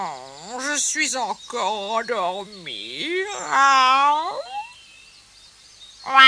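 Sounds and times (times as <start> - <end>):
person imitating a frog croak: 0.0 - 1.0, 2.2 - 4.7
speech: 0.0 - 4.6, 6.0 - 6.2.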